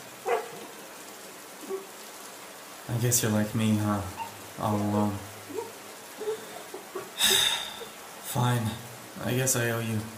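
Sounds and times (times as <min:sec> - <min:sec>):
steady hiss: 0:00.0 - 0:10.1
speech: 0:02.9 - 0:05.3, 0:08.4 - 0:10.1
small dog yipping: 0:04.2 - 0:04.4.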